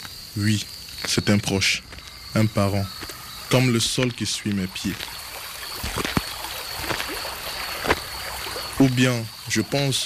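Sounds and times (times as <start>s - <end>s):
speech: 0.4s - 5.2s, 5.9s - 6.2s, 8.8s - 10.0s
flowing river water with splashes and gurgles: 2.7s - 10.0s.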